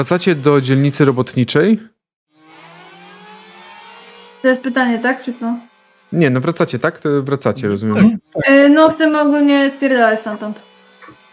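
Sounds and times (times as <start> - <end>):
speech: 0.0 - 2.0, 4.4 - 10.7
alert siren wailing: 2.5 - 5.6, 8.0 - 9.0.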